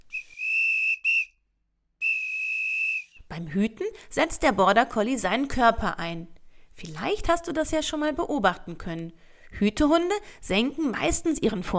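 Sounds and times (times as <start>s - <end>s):
shepherd's whistle signal to herding dog: 0.0s - 3.3s
speech: 3.4s - 11.7s.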